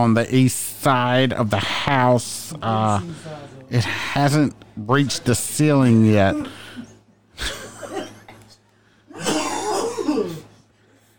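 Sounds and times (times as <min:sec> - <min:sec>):
speech: 0:00.0 - 0:06.6, 0:07.4 - 0:07.6
harsh raspy coughing fits: 0:06.2 - 0:08.4, 0:09.1 - 0:10.5.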